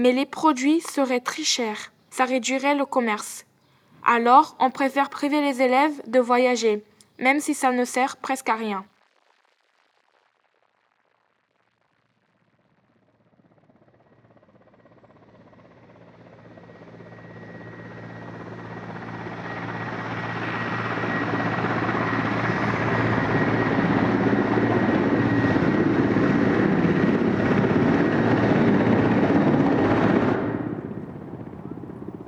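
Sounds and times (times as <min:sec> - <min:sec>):
faint noise: 0:00.0 - 0:08.9
speech: 0:00.0 - 0:08.9
model airplane engine and propeller whining: 0:14.6 - 0:32.2.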